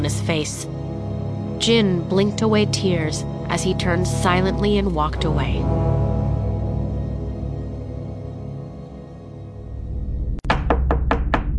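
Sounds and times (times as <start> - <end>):
speech: 0.0 - 0.9, 1.6 - 6.0
low steady hum: 0.0 - 10.1
knocking on a bedroom door: 10.4 - 11.5.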